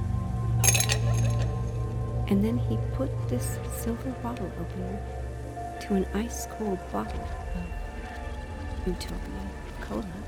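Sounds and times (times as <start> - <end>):
cracked ice clinking into a glass: 0.6 - 1.6
speech: 2.3 - 5.2, 5.8 - 7.8, 8.8 - 10.2.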